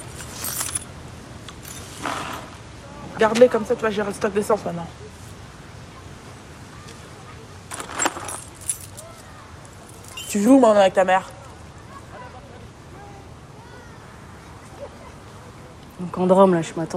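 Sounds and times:
bunch of keys jingling as handed over: 0:00.0 - 0:00.9, 0:01.6 - 0:02.0, 0:07.7 - 0:10.6
speech: 0:03.2 - 0:05.2, 0:10.3 - 0:11.4, 0:16.1 - 0:16.9.

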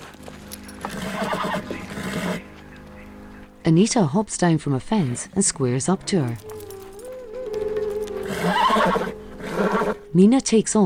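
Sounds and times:
pony hooves clip-clopping: 0:00.0 - 0:10.2
pony whinnying as it is urged on: 0:00.8 - 0:02.5, 0:05.9 - 0:10.2
speech: 0:03.7 - 0:06.6, 0:08.4 - 0:10.8.

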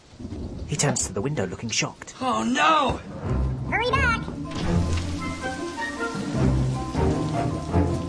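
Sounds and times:
heavy rain pouring: 0:00.0 - 0:08.0
speech: 0:00.7 - 0:04.3
music and tonal sounds: 0:03.1 - 0:08.0.

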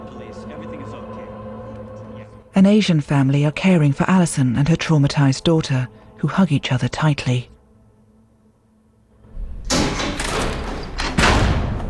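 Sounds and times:
speech: 0:02.6 - 0:07.5
heavy door grinding as it slides open: 0:09.2 - 0:11.8.

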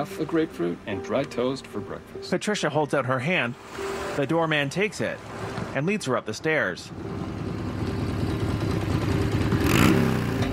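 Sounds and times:
speech: 0:00.0 - 0:07.3
motorcycle engine idling with a throaty rumble: 0:06.9 - 0:10.5.

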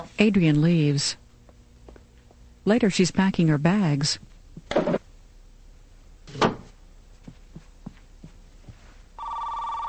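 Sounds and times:
speech: 0:00.0 - 0:01.2, 0:02.6 - 0:05.0
soft knocks or footsteps: 0:07.1 - 0:09.0
telephone ringing with buzzy electronic tone: 0:09.2 - 0:09.8.

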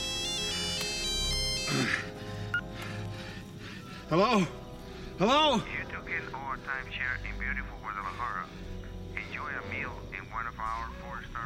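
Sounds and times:
mobile phone ringtone from a phone dug out of dung: 0:00.0 - 0:01.7
speech: 0:01.7 - 0:02.0, 0:04.1 - 0:04.6, 0:05.2 - 0:08.8, 0:09.4 - 0:11.4.

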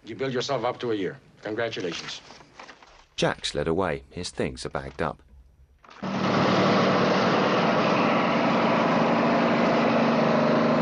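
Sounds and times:
speech: 0:00.1 - 0:02.4, 0:03.2 - 0:05.3
delivery truck engine roaring along a highway: 0:06.0 - 0:10.7.

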